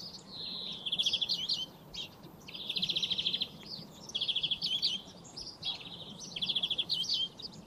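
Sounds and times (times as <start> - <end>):
European greenfinch song with fast rattling trills, Chloris chloris: 0.0 - 7.6
faint background hiss: 0.0 - 7.6.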